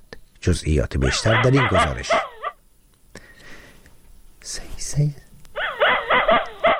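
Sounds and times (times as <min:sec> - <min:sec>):
speech: 0:00.4 - 0:02.3, 0:04.5 - 0:05.2
dog barking and whimpering with high strained cries: 0:01.0 - 0:02.6, 0:05.6 - 0:06.7.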